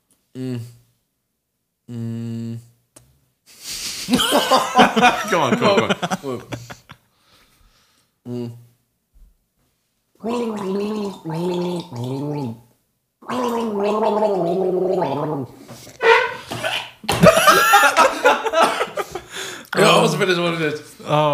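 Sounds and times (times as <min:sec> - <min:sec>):
speech: 0:00.4 - 0:00.8, 0:01.9 - 0:02.7, 0:04.1 - 0:06.7, 0:08.2 - 0:08.6, 0:10.2 - 0:12.6, 0:13.3 - 0:16.1, 0:19.7 - 0:21.3
person gargling a song: 0:01.9 - 0:02.6, 0:08.3 - 0:08.6, 0:10.2 - 0:12.6, 0:13.2 - 0:15.6
laughter: 0:03.7 - 0:07.0, 0:16.5 - 0:20.2.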